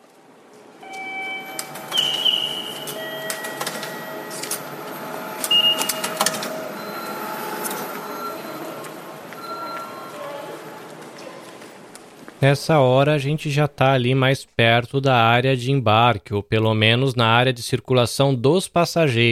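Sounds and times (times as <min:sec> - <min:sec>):
train station ticket gate whirring and clicking processing a ticket: 0:00.8 - 0:10.0
electronic platform signal tones: 0:00.8 - 0:10.8
busy station murmur: 0:01.6 - 0:12.4
speech: 0:12.4 - 0:19.3.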